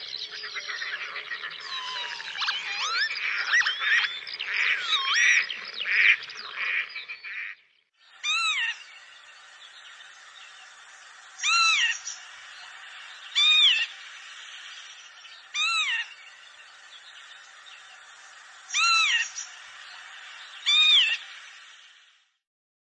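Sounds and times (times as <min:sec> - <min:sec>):
northern lapwing calling: 0:00.4 - 0:07.5, 0:08.2 - 0:21.4
faint background hiss: 0:08.0 - 0:22.4.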